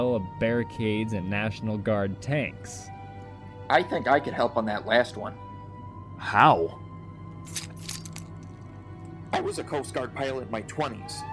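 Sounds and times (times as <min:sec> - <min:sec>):
speech: 0:00.0 - 0:03.0, 0:03.7 - 0:05.4, 0:06.2 - 0:06.8, 0:07.4 - 0:07.7, 0:09.4 - 0:11.3
bunch of news helicopter keys jangling: 0:07.4 - 0:08.6.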